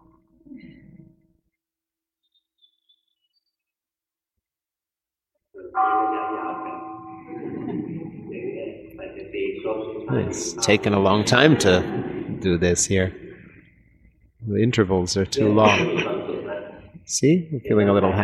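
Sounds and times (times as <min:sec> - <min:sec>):
meditation gong struck and ringing: 0:05.6 - 0:08.9
speech: 0:08.3 - 0:13.2, 0:14.4 - 0:16.1, 0:17.1 - 0:18.2.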